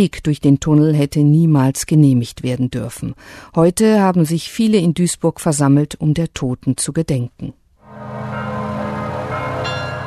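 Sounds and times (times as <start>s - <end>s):
speech: 0.0s - 8.4s
church bells pealing at memorial ceremony: 7.9s - 10.0s.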